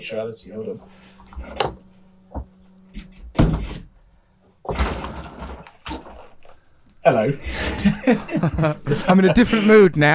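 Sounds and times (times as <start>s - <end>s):
speech: 0.0s - 2.4s, 7.1s - 10.1s
window being pushed shut: 0.9s - 3.9s, 4.6s - 6.5s
laughter: 7.3s - 9.9s.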